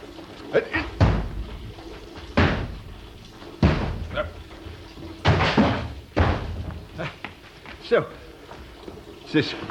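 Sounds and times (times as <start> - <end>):
speech: 0.5 - 1.0, 7.9 - 8.3, 9.3 - 9.6
door kicked to break the lock: 1.0 - 1.5, 2.4 - 2.9, 3.6 - 4.3, 5.2 - 6.9.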